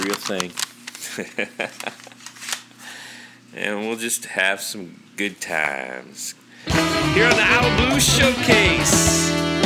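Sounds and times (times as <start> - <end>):
speech: 0.0 - 0.6, 1.2 - 2.2, 3.5 - 9.5
plastic CD cases clacking and rattling in a hand: 0.0 - 1.1
laughter: 1.0 - 2.1.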